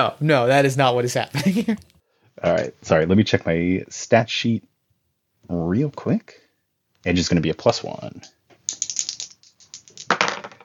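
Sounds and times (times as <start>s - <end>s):
speech: 0.0s - 4.7s, 5.5s - 6.4s, 7.0s - 8.4s
dice clattering across a hard surface: 8.6s - 10.6s.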